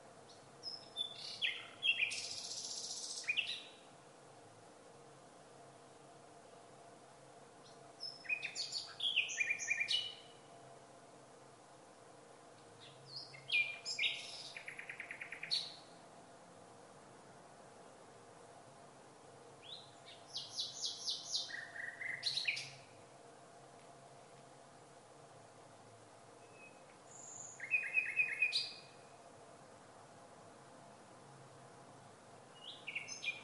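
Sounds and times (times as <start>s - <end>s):
nightingale song: 0.0s - 4.0s, 7.5s - 11.0s, 11.9s - 16.1s, 19.4s - 23.2s, 26.2s - 29.6s, 32.4s - 33.4s
steady low hiss: 0.0s - 33.4s.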